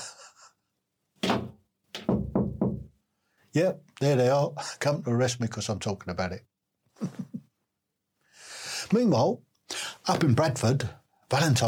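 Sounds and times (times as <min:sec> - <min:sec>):
knocking on a wooden door: 0:01.2 - 0:03.0
speech: 0:03.6 - 0:07.2, 0:08.9 - 0:09.5, 0:10.1 - 0:11.6.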